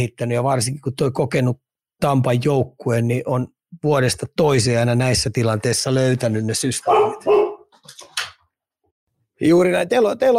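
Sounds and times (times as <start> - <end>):
speech: 0.0 - 7.4, 9.4 - 10.3
dog barking in the background: 6.8 - 7.7.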